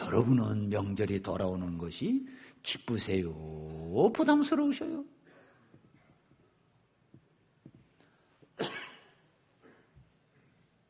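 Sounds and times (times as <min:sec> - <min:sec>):
faint noise: 0:00.0 - 0:10.8
speech: 0:00.1 - 0:05.2
person coughing: 0:08.6 - 0:10.0.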